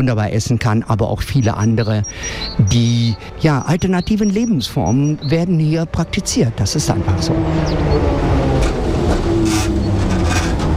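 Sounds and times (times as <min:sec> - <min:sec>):
speech: 0:00.0 - 0:08.3
constant traffic noise on a busy shopping street: 0:00.0 - 0:10.7
tram rattling past on a busy shopping street: 0:00.6 - 0:10.7.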